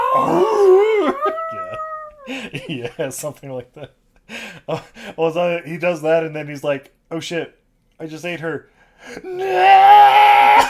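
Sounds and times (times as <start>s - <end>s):
person imitating a demon-like monster roar: 0.0s - 2.1s, 9.3s - 10.6s
speech: 2.3s - 10.6s.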